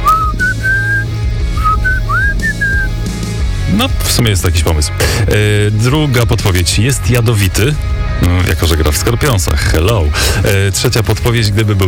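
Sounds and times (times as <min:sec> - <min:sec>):
person whistling a slow melody: 0:00.0 - 0:03.0
speech: 0:03.8 - 0:11.8.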